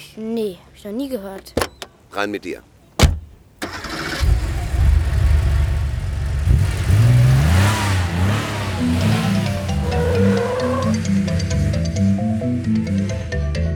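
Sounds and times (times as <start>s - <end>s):
speech: 0.0s - 2.7s
Porsche car engine accelerating: 3.0s - 13.6s.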